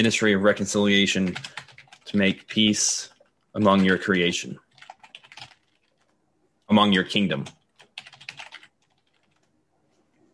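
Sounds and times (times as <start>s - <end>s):
speech: 0.0s - 4.6s, 6.7s - 7.6s
typing on a computer keyboard: 1.2s - 6.2s, 7.3s - 9.5s.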